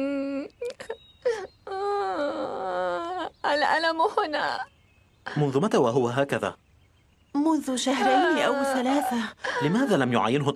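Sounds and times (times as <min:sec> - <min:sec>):
wounded boy crying: 0:00.0 - 0:03.3, 0:08.0 - 0:10.1
speech: 0:03.6 - 0:04.7, 0:05.3 - 0:06.6, 0:07.4 - 0:10.5.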